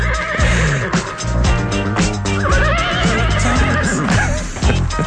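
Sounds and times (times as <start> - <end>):
horse neighing: 0.0 - 4.9.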